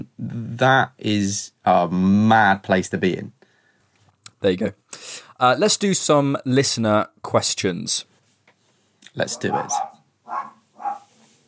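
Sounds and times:
speech: 0:00.4 - 0:03.4, 0:04.4 - 0:08.1, 0:09.2 - 0:09.9
dog barking: 0:09.3 - 0:11.1.

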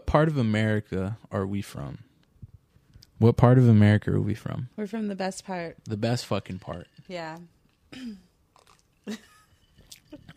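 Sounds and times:
speech: 0:00.1 - 0:02.1, 0:03.2 - 0:08.3, 0:09.0 - 0:09.3
person clearing throat: 0:07.9 - 0:08.3.

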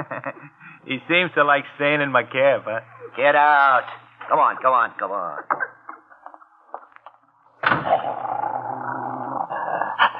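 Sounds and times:
speech: 0:00.2 - 0:05.6
big police dog and another dog growling at each other in hot weather: 0:07.8 - 0:10.1.

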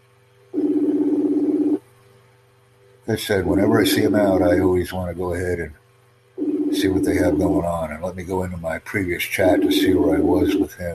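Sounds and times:
quiet hum: 0:00.0 - 0:10.9
warbling telephone ring: 0:00.6 - 0:01.8, 0:06.4 - 0:07.6, 0:09.4 - 0:10.7
speech: 0:03.1 - 0:05.8, 0:06.7 - 0:10.9.

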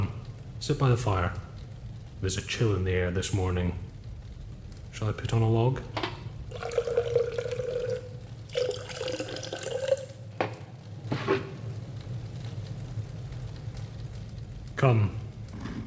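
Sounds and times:
low steady rumble: 0:00.0 - 0:15.8
speech: 0:00.6 - 0:01.5, 0:02.2 - 0:03.9, 0:05.0 - 0:06.0, 0:14.8 - 0:15.2
wine pouring into a cup: 0:06.5 - 0:10.2.

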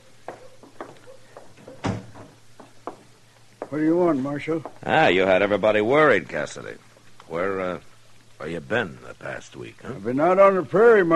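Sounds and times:
wooden knocks and creaks of door handling: 0:00.2 - 0:03.8
door swinging shut with solid thump: 0:01.6 - 0:02.4
speech: 0:03.7 - 0:11.1.

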